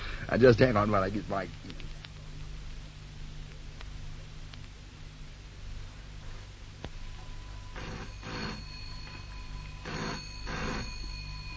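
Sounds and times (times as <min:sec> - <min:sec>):
low hum: 0:00.0 - 0:11.5
speech: 0:00.3 - 0:01.8
faint clicks: 0:01.5 - 0:04.8
telephone bell ringing: 0:07.7 - 0:11.5.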